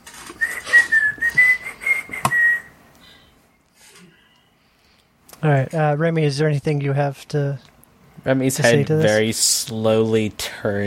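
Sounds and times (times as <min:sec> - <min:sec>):
person whistling a short casual tune: 0:00.4 - 0:02.8
speech: 0:05.4 - 0:10.8.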